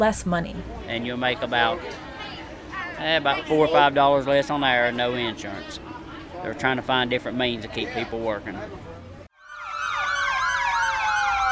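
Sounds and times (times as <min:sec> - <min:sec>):
speech: 0:00.0 - 0:02.1, 0:03.0 - 0:08.9
fire truck sirens wailing at a parade start: 0:09.4 - 0:11.5.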